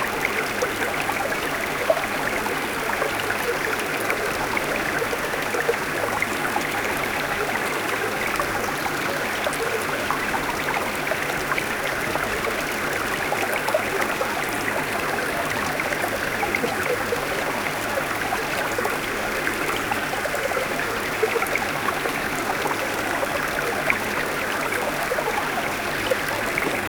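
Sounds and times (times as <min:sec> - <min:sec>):
creek water flowing: 0:00.0 - 0:26.9.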